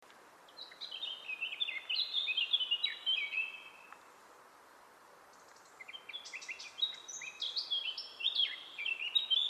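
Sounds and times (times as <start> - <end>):
soft background hiss: 0.0 - 9.4
Eurasian blackcap Sylvia atricapilla singing warbling phrases: 0.5 - 3.9, 5.8 - 9.4.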